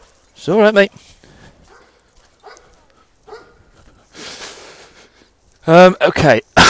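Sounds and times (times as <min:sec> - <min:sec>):
speech: 0:00.4 - 0:01.2, 0:05.6 - 0:06.6
dog giving short barks and yelps: 0:01.7 - 0:03.6.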